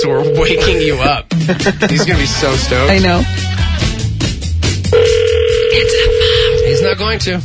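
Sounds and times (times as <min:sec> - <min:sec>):
electronic phone ringing tone through a receiver: 0:00.0 - 0:01.0, 0:05.0 - 0:07.0
speech: 0:00.0 - 0:03.9, 0:06.9 - 0:07.4
laughter: 0:00.6 - 0:03.2.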